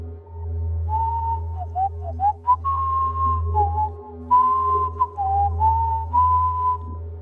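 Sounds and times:
person whistling a wavering folk tune in a basement: 0:00.9 - 0:07.0.

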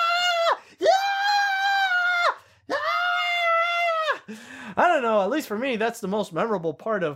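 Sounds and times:
single voice imitating excited kids screaming: 0:00.0 - 0:04.2
speech: 0:04.3 - 0:07.1.

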